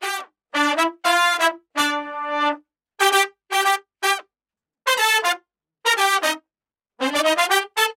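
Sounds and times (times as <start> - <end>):
B horn playing: 0.0 - 4.2, 4.9 - 6.4, 7.0 - 7.9.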